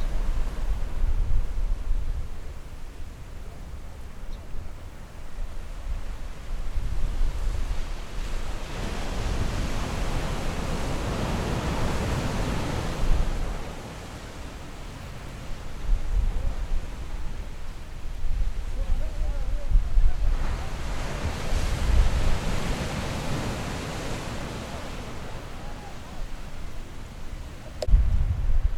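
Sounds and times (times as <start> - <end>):
low wind rumble: 0.0 - 28.7
ocean waves rolling onto the shore: 0.0 - 28.7.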